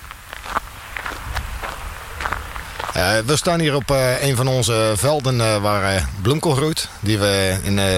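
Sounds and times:
footsteps striding on open ground outdoors: 0.0s - 7.9s
speech: 3.0s - 7.9s.

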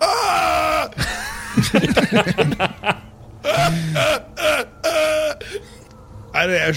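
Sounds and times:
man making loud exaggerated crying sounds with wails, sobs and whimpers: 0.0s - 5.8s
laughter: 0.9s - 5.4s
speech: 1.6s - 3.0s, 6.4s - 6.7s.

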